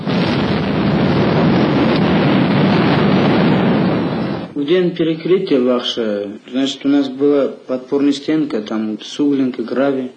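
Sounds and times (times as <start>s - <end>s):
massive rock-blasting explosion in the Pulisangin gorge at Nurek hydroelectric plant construction: 0.0s - 4.6s
speech: 4.7s - 10.1s.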